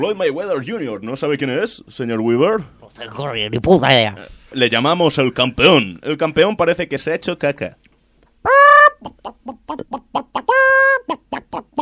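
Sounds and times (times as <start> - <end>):
speech: 0.0 - 11.8
hen clucking: 8.4 - 11.8.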